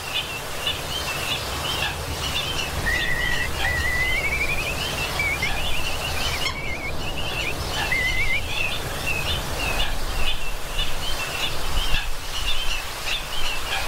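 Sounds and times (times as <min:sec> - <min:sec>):
steady background noise: 0:00.0 - 0:13.8
slender-billed curlew wavering whistle calls: 0:01.3 - 0:09.3
high bird chirps: 0:02.2 - 0:09.3.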